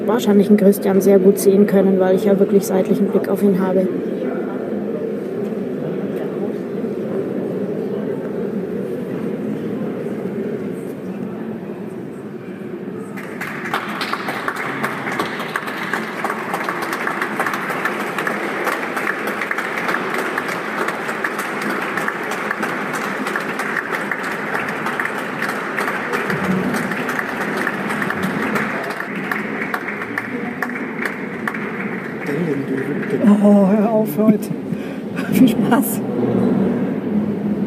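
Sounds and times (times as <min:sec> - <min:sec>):
murmur of voices: 0:00.0 - 0:37.6
speech: 0:00.1 - 0:04.4
audience applause in a reverberant church: 0:13.1 - 0:34.6.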